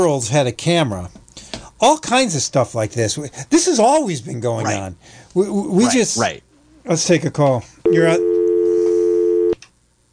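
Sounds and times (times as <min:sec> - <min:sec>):
speech: 0:00.0 - 0:01.2, 0:01.8 - 0:08.3
telephone dial tone: 0:07.9 - 0:09.6.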